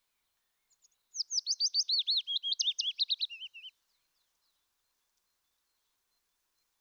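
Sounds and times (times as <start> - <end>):
willow warbler song: 0.0 - 6.7.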